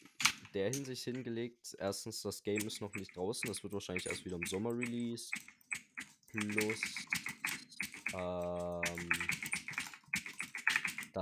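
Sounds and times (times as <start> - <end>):
speech: 0.5 - 5.6, 6.3 - 7.2, 8.1 - 9.3
computer keyboard typing: 2.5 - 11.2.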